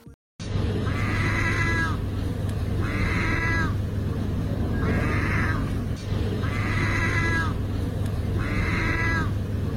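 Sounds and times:
low hum: 0:00.4 - 0:09.7
seagull imitating a cat's meow: 0:00.9 - 0:02.0, 0:02.8 - 0:03.8, 0:04.8 - 0:05.7, 0:06.4 - 0:07.6, 0:08.4 - 0:09.3.

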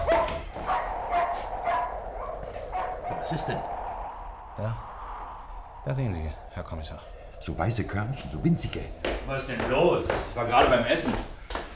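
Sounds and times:
dog barking in short yappy bursts: 0:00.0 - 0:03.2
speech: 0:03.3 - 0:03.8, 0:04.6 - 0:04.9, 0:05.8 - 0:11.4.

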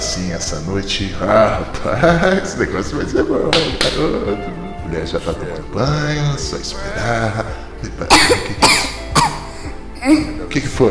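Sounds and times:
speech: 0:00.2 - 0:09.4, 0:10.0 - 0:10.8
girl coughing: 0:08.1 - 0:10.3.

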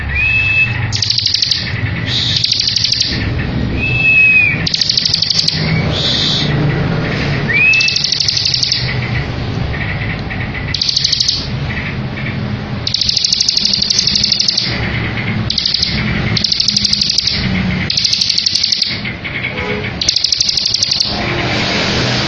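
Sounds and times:
bar-winged prinia singing rattling trill phrases in Ngebren style: 0:00.0 - 0:22.2
bar-winged prinia whistles: 0:00.1 - 0:03.1, 0:03.8 - 0:06.5, 0:07.5 - 0:08.8.

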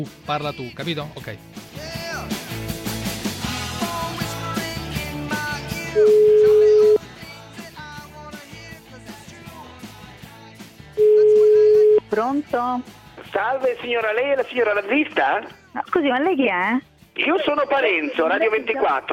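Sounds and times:
speech: 0:00.0 - 0:02.0, 0:06.0 - 0:06.3, 0:12.1 - 0:19.1
loud busy music: 0:00.0 - 0:19.1
telephone ringing tone while placing a call: 0:06.0 - 0:07.0, 0:11.0 - 0:12.1.

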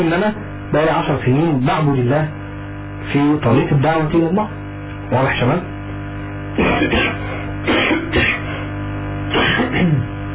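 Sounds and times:
speech: 0:00.0 - 0:02.4, 0:03.0 - 0:05.7, 0:06.6 - 0:08.2
steady low hum: 0:00.0 - 0:10.3
person with a lingering cough coughing: 0:06.6 - 0:08.7, 0:09.3 - 0:10.1.

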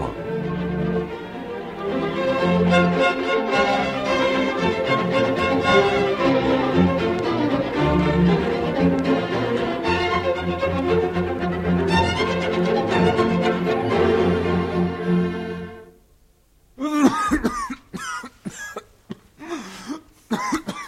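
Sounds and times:
sustained low musical tone: 0:00.0 - 0:16.0
man coughing harshly: 0:16.8 - 0:20.8.

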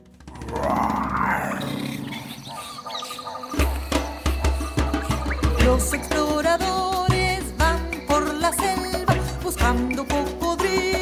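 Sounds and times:
rhythmic percussive thumps: 0:00.0 - 0:11.0
lion roaring: 0:00.2 - 0:05.3.

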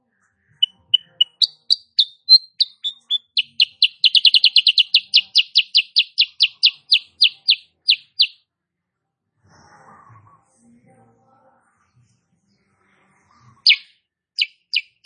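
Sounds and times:
female sooty-headed bulbul singing high chirps: 0:00.6 - 0:08.4.

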